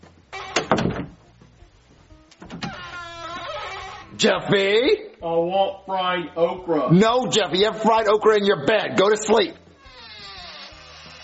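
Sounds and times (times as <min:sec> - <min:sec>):
squeaky door creaking open or closed: 0:00.0 - 0:01.2, 0:02.3 - 0:04.2, 0:09.6 - 0:11.2
door clunks: 0:00.4 - 0:01.2, 0:02.4 - 0:04.0
speech: 0:04.2 - 0:09.6.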